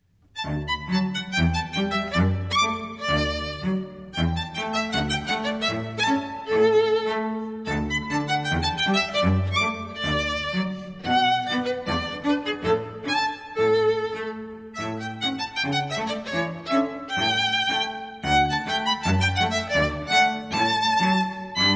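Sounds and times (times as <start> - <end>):
cello playing a gavotte: 0.0 - 21.7
violin playing a gavotte: 0.0 - 21.7.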